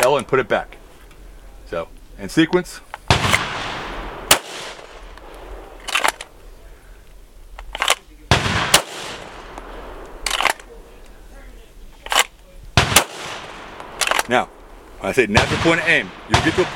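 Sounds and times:
speech: 0.1s - 0.8s, 1.7s - 3.0s, 14.3s - 16.7s
firearm gunshots during a close-range shooting drill: 3.1s - 6.2s, 7.8s - 10.8s, 12.8s - 14.5s, 15.2s - 16.7s.

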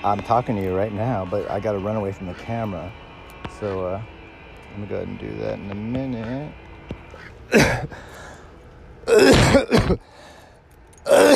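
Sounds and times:
speech: 0.0s - 8.2s, 9.0s - 10.2s
person clearing throat in front of a camera: 7.5s - 7.9s, 9.1s - 10.0s, 11.1s - 11.3s
person coughing in front of a camera: 7.5s - 8.0s, 9.1s - 10.1s, 11.1s - 11.3s.

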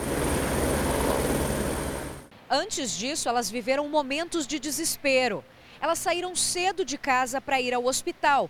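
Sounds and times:
Military Police helicopter rotor and engine flying overhead in São Paulo: 0.0s - 2.3s
speech: 2.5s - 8.4s.

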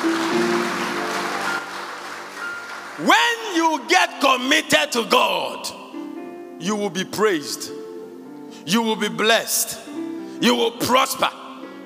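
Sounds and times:
crowd clapping in sustained applause: 0.0s - 4.2s
speech: 3.0s - 5.8s, 6.6s - 7.8s, 8.6s - 11.4s.

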